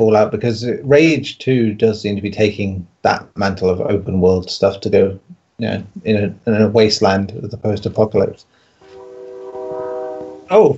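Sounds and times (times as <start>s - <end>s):
speech: 0.0s - 8.6s, 10.5s - 10.7s
train horn blaring: 8.8s - 10.7s.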